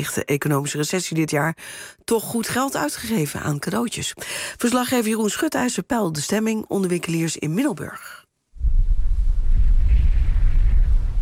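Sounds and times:
speech: 0.0 - 8.2
wind roaring outdoors in rainy weather in Middelburg: 8.6 - 11.2.

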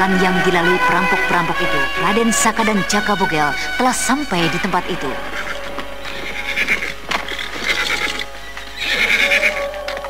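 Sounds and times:
speech: 0.0 - 5.5
horses neighing and whinnying: 2.5 - 10.0
clatter of hooves: 5.3 - 10.0
horses galloping along a road: 5.8 - 10.0.

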